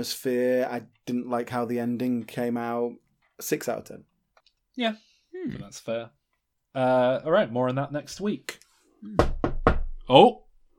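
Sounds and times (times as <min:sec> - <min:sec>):
speech: 0:00.0 - 0:04.1, 0:04.8 - 0:06.2, 0:06.8 - 0:09.3, 0:10.1 - 0:10.4
knocking on a door: 0:09.1 - 0:10.2.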